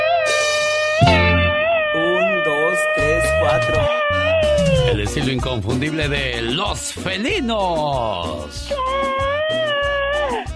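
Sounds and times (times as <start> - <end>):
person imitating a kitten's meow: 0.0 - 5.2, 8.7 - 10.5
speech: 5.1 - 9.8.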